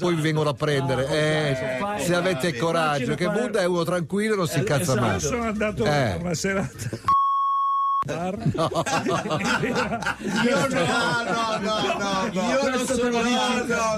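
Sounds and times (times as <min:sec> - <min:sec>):
speech: 0:00.0 - 0:07.1, 0:08.0 - 0:13.9
people chuckling and laughing: 0:04.8 - 0:07.2, 0:08.0 - 0:13.9
censor beep tone: 0:07.1 - 0:08.1.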